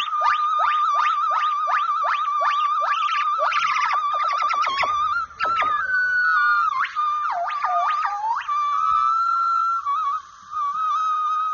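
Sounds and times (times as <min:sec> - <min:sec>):
monkey chattering with rapid trills: 0:00.0 - 0:06.1, 0:06.7 - 0:08.6
long level whistled tone: 0:00.0 - 0:11.5.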